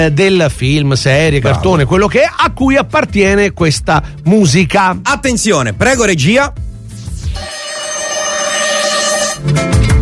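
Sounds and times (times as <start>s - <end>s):
speech: 0.0s - 6.7s
alarm clock ringing with a shrill bell: 7.4s - 9.4s.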